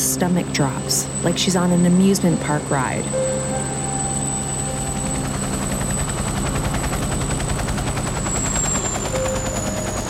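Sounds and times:
helicopter turbine whine: 0:00.0 - 0:10.0
speech: 0:00.2 - 0:03.5
helicopter rotor blades thumping: 0:04.8 - 0:10.0.

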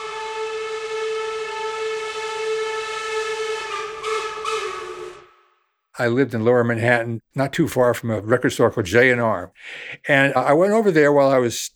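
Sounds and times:
train whistle: 0:00.0 - 0:05.6
speech: 0:06.0 - 0:11.7.

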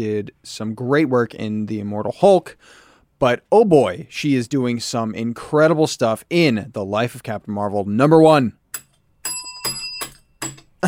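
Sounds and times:
speech: 0:00.0 - 0:08.8
bell rung to mark a pick of the week: 0:08.8 - 0:10.6.

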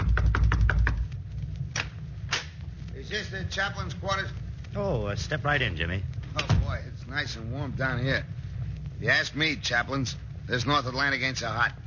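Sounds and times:
knocking on a door: 0:00.0 - 0:01.0
steady low rumble: 0:00.0 - 0:11.8
speech: 0:03.1 - 0:08.4, 0:09.0 - 0:11.8.

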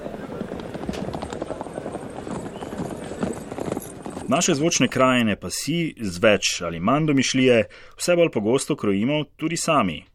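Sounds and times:
horse hooves clip-clopping at a horse racetrack in Zagreb: 0:00.0 - 0:05.2
speech: 0:04.3 - 0:10.1.

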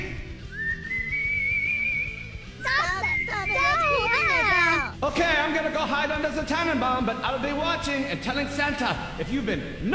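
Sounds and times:
person whistling a long steady note: 0:00.4 - 0:03.6
children chattering and calling out: 0:02.6 - 0:04.9
speech: 0:05.0 - 0:09.9.

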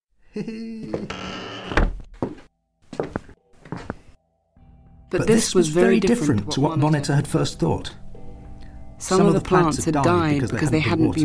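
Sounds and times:
speech: 0:00.4 - 0:01.5, 0:05.1 - 0:08.0, 0:09.0 - 0:11.2
door of a terraced house creaking open: 0:00.9 - 0:02.1.

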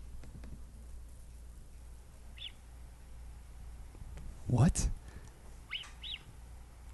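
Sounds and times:
steady low hiss and rumble: 0:00.0 - 0:06.9
mountain lion high whistling chirps: 0:02.3 - 0:02.7, 0:05.6 - 0:06.4
speech: 0:04.5 - 0:05.0.

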